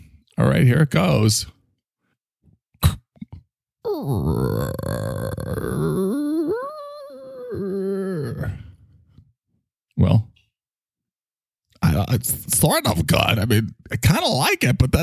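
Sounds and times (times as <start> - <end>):
speech: 0.4 - 1.6, 12.1 - 15.0
person vocally imitating a creaking door opening: 3.8 - 8.7.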